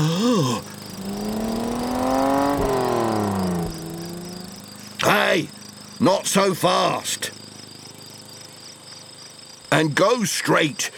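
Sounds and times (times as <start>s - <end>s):
tractor engine with a cutting blade revving as it accelerates: 0.7s - 4.8s
speech: 5.4s - 7.4s, 9.7s - 10.9s.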